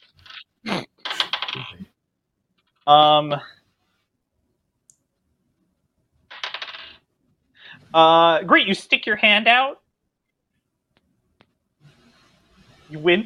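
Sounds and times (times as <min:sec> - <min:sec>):
dice rolling during a tabletop role-playing game session: 0:01.0 - 0:01.7, 0:06.3 - 0:07.0
speech: 0:02.9 - 0:03.5, 0:07.9 - 0:09.8, 0:12.9 - 0:13.2.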